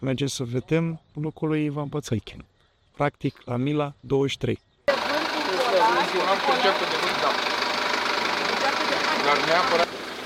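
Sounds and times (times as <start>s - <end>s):
speech: 0.0s - 4.7s, 5.8s - 7.6s, 9.2s - 10.0s
indistinct voices: 4.9s - 9.9s
boat engine droning: 4.9s - 10.2s.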